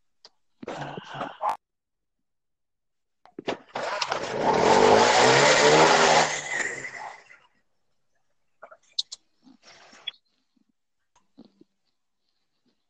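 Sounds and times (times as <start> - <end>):
motorcycle engine revving: 3.8 - 7.3.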